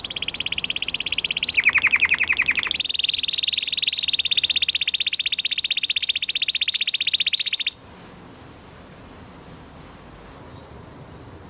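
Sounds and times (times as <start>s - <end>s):
male Belgian canary trilling: 0.0s - 7.8s.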